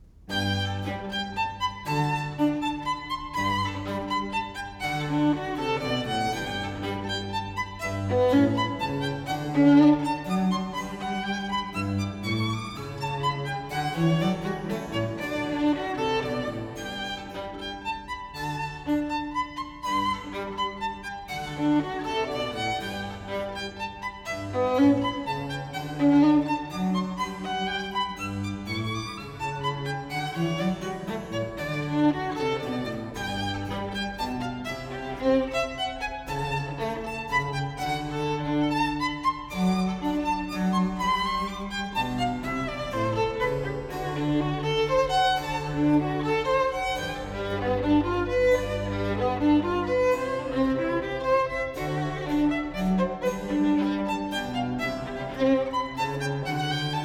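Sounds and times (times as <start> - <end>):
classical sonata in G major: 0.0 - 57.0.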